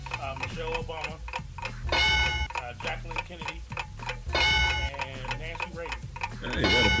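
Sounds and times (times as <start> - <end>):
30-second countdown timer ticking: 0.0 - 6.9
speech: 0.6 - 1.3, 6.5 - 6.9
tonal hum: 1.8 - 2.5, 4.3 - 4.9.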